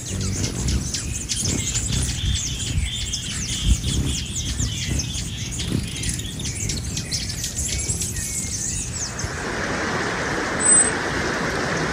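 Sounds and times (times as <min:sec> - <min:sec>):
hummingbird chirps: 0:00.0 - 0:09.3
low rumbling background: 0:00.0 - 0:11.9.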